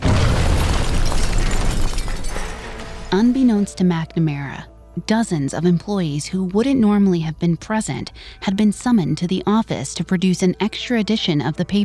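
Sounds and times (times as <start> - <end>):
dynamite bomb with wind-up clock and detonator exploding outside a newspaper building: 0.0 - 3.1
crackling debris from a dynamite bomb explosion: 0.0 - 3.6
speech: 3.2 - 11.8.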